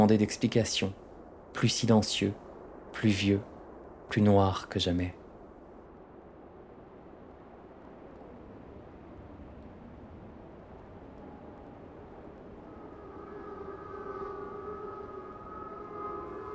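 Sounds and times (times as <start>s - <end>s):
speech: 0.0s - 1.0s, 1.6s - 2.4s, 3.0s - 3.5s, 4.1s - 5.2s
dense rumbling background: 0.0s - 16.5s
air raid siren wailing: 9.1s - 16.5s.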